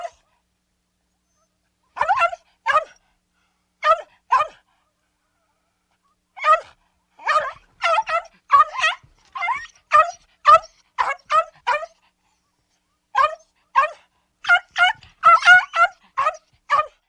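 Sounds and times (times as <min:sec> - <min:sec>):
small dog giving high yappy barks: 0:02.0 - 0:03.0, 0:06.4 - 0:12.0, 0:13.2 - 0:17.0.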